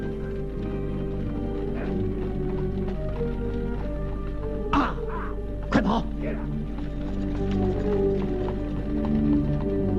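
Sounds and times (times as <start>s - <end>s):
droning background: 0.0s - 9.9s
horse hooves clip-clopping drawing a carriage: 0.0s - 9.9s
speech: 5.8s - 6.6s.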